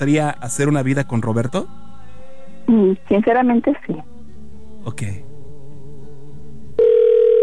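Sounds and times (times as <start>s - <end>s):
speech: 0.0s - 1.8s, 2.7s - 4.1s, 4.8s - 5.3s
telephone line ringing with a steady electronic tone: 6.8s - 7.4s.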